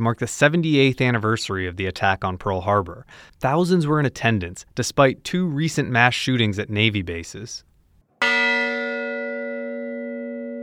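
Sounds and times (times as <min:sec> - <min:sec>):
speech: 0:00.0 - 0:07.7
single large memorial bell struck: 0:08.2 - 0:10.6.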